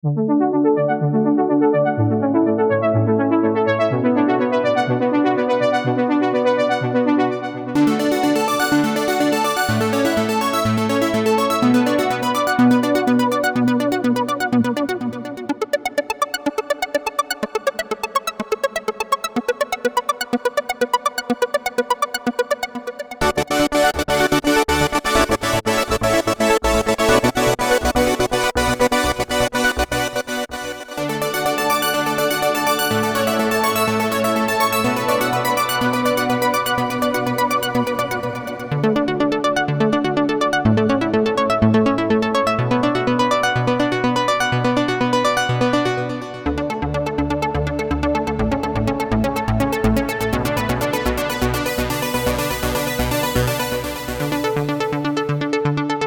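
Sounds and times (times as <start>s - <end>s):
synth arpeggio: 0.0s - 56.0s.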